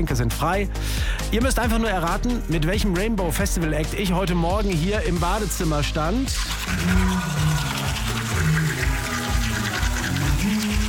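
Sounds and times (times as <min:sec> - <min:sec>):
speech: 0:00.0 - 0:07.5
buzzing toothbrush brushing teeth: 0:06.3 - 0:10.8.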